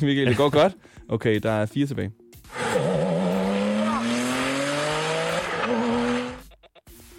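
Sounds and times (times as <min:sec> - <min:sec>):
speech: 0:00.0 - 0:02.9
Porsche sports car engine revving under acceleration: 0:02.5 - 0:06.4.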